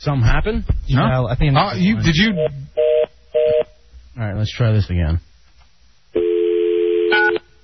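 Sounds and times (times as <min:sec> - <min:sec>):
speech: 0:00.0 - 0:02.8, 0:04.2 - 0:05.3
telephone keypad tone: 0:06.2 - 0:07.4.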